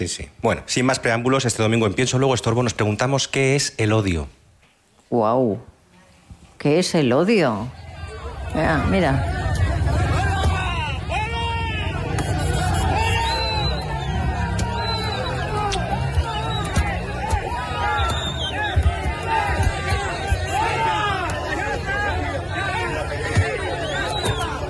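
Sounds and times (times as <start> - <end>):
speech: 0.0 - 4.4, 5.1 - 5.7, 6.6 - 7.8, 8.5 - 9.4
angry mob of local residents shouting and jeering: 7.6 - 24.6.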